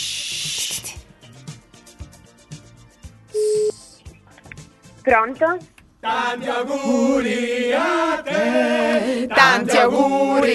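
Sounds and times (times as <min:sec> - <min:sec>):
telephone ringing tone on outgoing call: 0:03.4 - 0:03.8
speech: 0:05.0 - 0:10.5.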